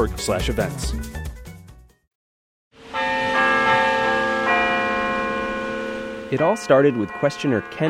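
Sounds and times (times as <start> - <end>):
speech: 0.0 - 1.2, 6.3 - 7.8
church bells from a nearby church ringing: 2.8 - 7.8.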